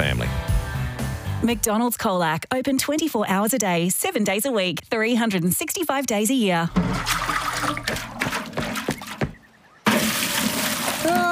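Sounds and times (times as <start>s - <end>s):
speech: 0.0s - 0.4s, 1.4s - 8.2s
water gushing and splashing into a tank: 6.7s - 9.2s, 9.9s - 11.3s
sharp knocks: 6.7s - 10.1s.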